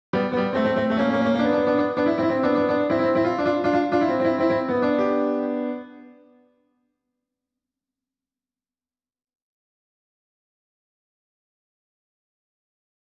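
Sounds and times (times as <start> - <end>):
keyboard test: 0.1 - 6.5.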